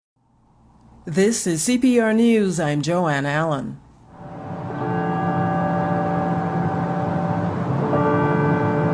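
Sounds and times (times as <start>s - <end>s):
speech: 1.0s - 3.8s
church bells ringing: 4.2s - 8.9s.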